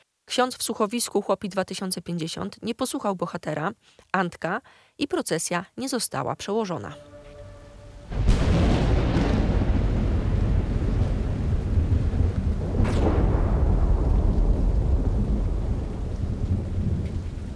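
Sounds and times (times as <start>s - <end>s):
speech: 0.3s - 7.1s
steady wash of rain: 7.8s - 17.5s
deep rolling thunder of a heavy thunderstorm: 8.0s - 17.5s.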